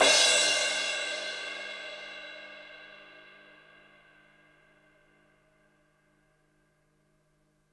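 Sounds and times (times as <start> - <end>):
acoustic crash cymbal struck hard: 0.0 - 4.3.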